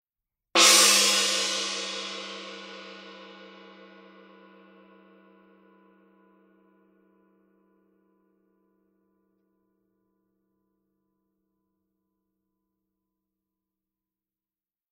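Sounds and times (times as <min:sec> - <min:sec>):
medium loud tiger gong: 0:00.6 - 0:05.6.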